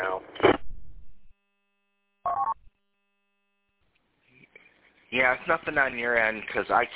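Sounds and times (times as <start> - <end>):
low rumble: 0.5 - 1.3
two-tone telephone dialing beep from a broken VoIP phone: 2.3 - 2.6
speech: 5.1 - 6.9.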